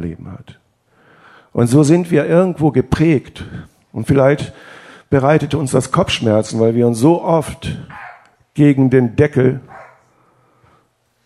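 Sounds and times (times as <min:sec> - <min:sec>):
speech: 0:00.0 - 0:00.6, 0:01.5 - 0:08.0, 0:08.6 - 0:09.8
dog yelping: 0:07.9 - 0:08.4, 0:09.6 - 0:10.1.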